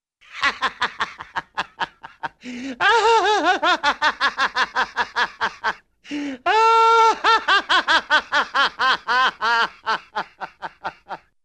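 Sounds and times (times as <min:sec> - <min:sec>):
cartoon man laughing hilariously: 0:00.3 - 0:05.8, 0:06.5 - 0:11.3.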